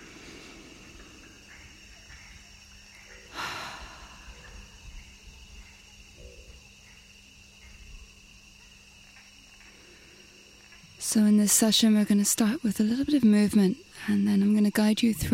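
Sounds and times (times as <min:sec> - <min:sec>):
quiet hum: 0:00.0 - 0:15.3
brief rushing inhale through the nose: 0:03.3 - 0:04.5
soft exhale through mouth: 0:03.3 - 0:04.6
speech: 0:11.1 - 0:15.3.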